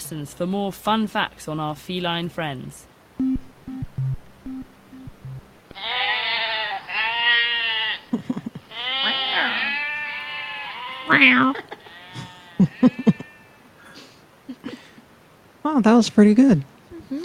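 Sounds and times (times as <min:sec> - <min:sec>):
speech: 0:00.0 - 0:03.3, 0:11.2 - 0:11.6, 0:15.7 - 0:16.7
goats bleating: 0:05.7 - 0:13.6.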